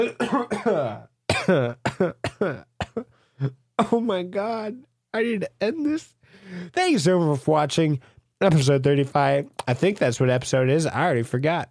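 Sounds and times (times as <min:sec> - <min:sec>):
person coughing in a loud hoarse fit: 0:00.0 - 0:04.1
speech: 0:00.0 - 0:11.7.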